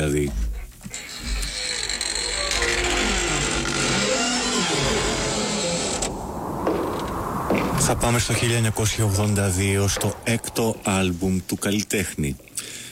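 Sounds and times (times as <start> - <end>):
speech: 0.0 - 0.4, 7.9 - 12.5
creaking door opening: 0.3 - 7.6, 8.5 - 11.4.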